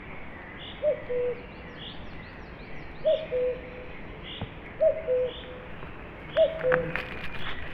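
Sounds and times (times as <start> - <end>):
cuckoo calling loudly in a forest: 3.0 - 3.8, 4.8 - 5.7, 6.3 - 7.2.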